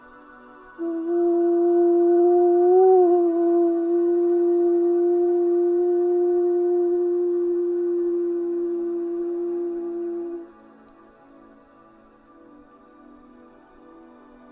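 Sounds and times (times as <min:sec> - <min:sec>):
single voice singing a long meditative om: 0:00.0 - 0:10.9.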